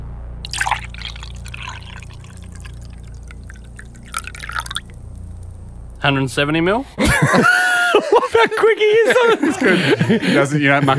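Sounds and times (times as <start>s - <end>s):
steady low hum: 0.0s - 8.4s
water pouring into a container: 0.4s - 5.7s
speech: 6.0s - 10.9s
laughter: 7.0s - 10.9s.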